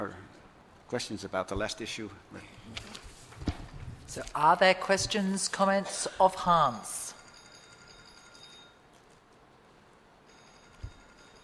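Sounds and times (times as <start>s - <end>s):
speech: 0.9s - 3.0s, 4.1s - 7.0s
telephone ringing: 6.8s - 8.8s, 10.2s - 11.4s.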